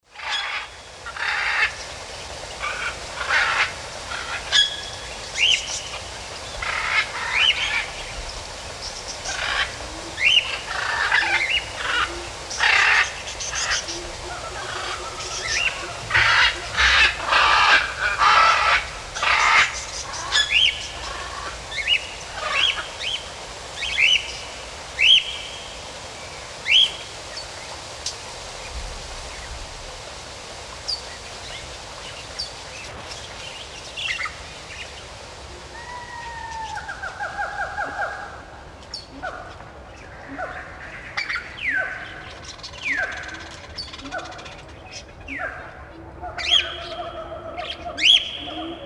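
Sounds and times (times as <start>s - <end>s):
rain in a forest: 0.0s - 48.8s
birds singing in a forest: 0.1s - 29.7s, 30.8s - 48.8s.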